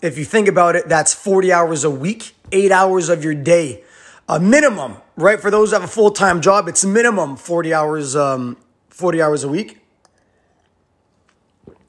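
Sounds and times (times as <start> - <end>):
speech: 0.0 - 9.8
person sipping a hot drink: 10.1 - 11.8.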